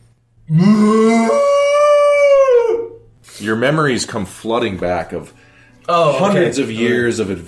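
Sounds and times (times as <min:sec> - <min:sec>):
speech: 0:00.5 - 0:01.0, 0:03.5 - 0:07.4
giant ox bellowing howl: 0:00.5 - 0:03.0.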